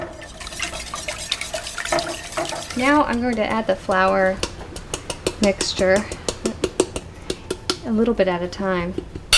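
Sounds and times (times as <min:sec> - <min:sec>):
eggs being whisked fast into a mixture in a bowl: 0:00.1 - 0:06.3
speech: 0:02.7 - 0:04.5, 0:05.4 - 0:06.2, 0:07.9 - 0:09.2.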